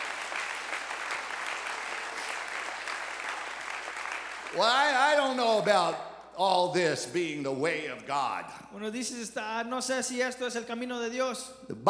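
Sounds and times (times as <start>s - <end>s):
congregation clapping hands: 0.0s - 5.7s
speech: 4.5s - 11.8s.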